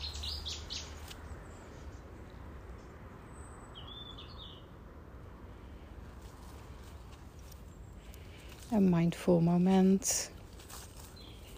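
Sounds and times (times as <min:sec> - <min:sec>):
small birds chirping and twittering outdoors: 0:00.0 - 0:04.8, 0:06.4 - 0:11.5
speech: 0:08.7 - 0:10.4.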